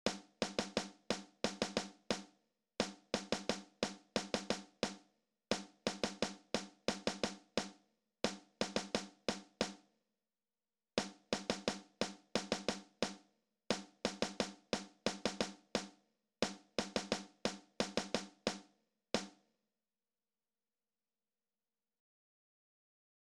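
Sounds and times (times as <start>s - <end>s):
drums playing: 0.0s - 7.7s, 8.3s - 9.8s, 11.0s - 18.6s.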